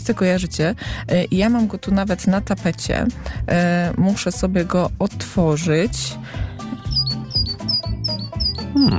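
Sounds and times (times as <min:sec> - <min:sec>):
speech: 0:00.1 - 0:06.6
great tit singing two-note phrases: 0:06.8 - 0:08.9.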